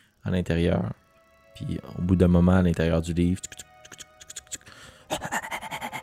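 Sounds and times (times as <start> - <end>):
speech: 0.2 - 1.0, 1.6 - 3.7
person imitating a dog's rapid panting: 5.1 - 6.0.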